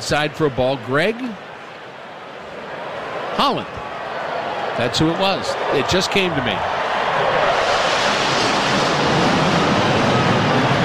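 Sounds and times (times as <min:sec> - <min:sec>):
speech: 0:00.1 - 0:01.5, 0:03.4 - 0:03.8, 0:04.8 - 0:07.4
jet aircraft passing overhead: 0:05.4 - 0:10.8.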